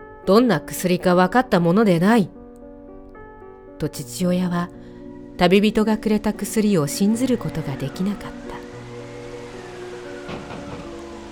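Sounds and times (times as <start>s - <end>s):
speech: 0.3s - 2.4s, 3.8s - 8.5s
steady rain beating on a door: 8.9s - 11.3s.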